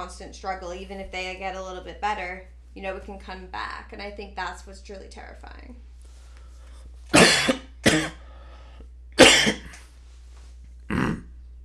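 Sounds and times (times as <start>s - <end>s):
speech: 0.0s - 5.9s
person coughing from choking on gummy bear sugar: 7.1s - 8.2s, 9.2s - 9.8s, 10.9s - 11.2s.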